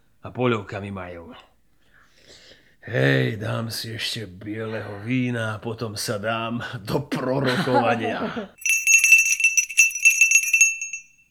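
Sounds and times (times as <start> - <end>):
speech: 0.2 - 1.5, 2.3 - 8.7
laughter: 7.3 - 8.5
small hand bell rung to summon a servant: 8.6 - 11.2.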